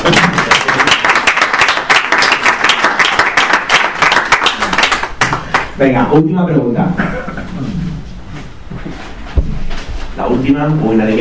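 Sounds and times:
crowd clapping: 0.0 - 5.8
speech: 5.8 - 7.7, 10.2 - 11.2.

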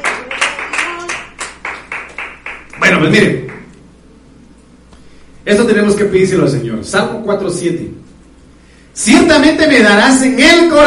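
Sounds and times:
congregation clapping in rhythm during a church service: 0.0 - 3.7
speech: 2.9 - 3.6, 5.5 - 8.0, 9.0 - 10.8.

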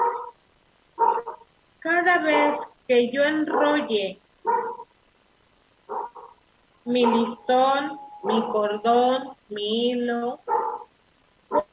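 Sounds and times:
neighbour's dog barking: 0.0 - 0.4, 1.0 - 1.5, 2.2 - 2.7, 3.5 - 4.9, 5.9 - 6.4, 7.0 - 7.4, 8.2 - 8.6, 10.4 - 10.9, 11.5 - 11.7
speech: 2.1 - 4.2, 6.9 - 10.5.

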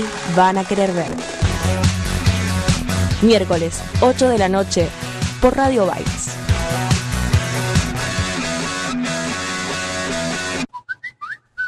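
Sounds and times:
speech: 0.0 - 2.0, 3.2 - 6.3
busy music: 0.0 - 10.7
short bright whistled jingle of quick rising notes: 10.7 - 11.6.

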